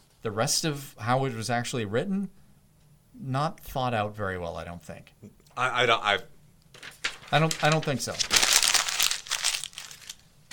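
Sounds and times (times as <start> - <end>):
speech: 0.2 - 2.4, 3.2 - 8.4
paper crinkling: 6.7 - 10.5.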